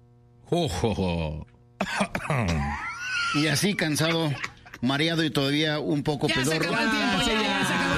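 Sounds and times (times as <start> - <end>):
speech: 0.5 - 7.8
loud strained choking coughs from choking on saliva: 1.8 - 4.8
voice acting out a vampire's sinister throaty laugh: 1.8 - 4.9.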